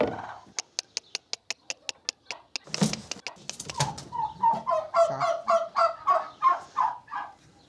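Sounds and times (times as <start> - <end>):
turkey hens clucking at a feeder used as a nest: 0.0 - 7.6
sharp ticks: 0.6 - 3.8.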